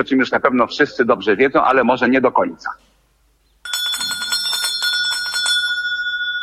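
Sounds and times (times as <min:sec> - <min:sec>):
speech: 0:00.0 - 0:02.9
small bell ringing: 0:03.6 - 0:06.4.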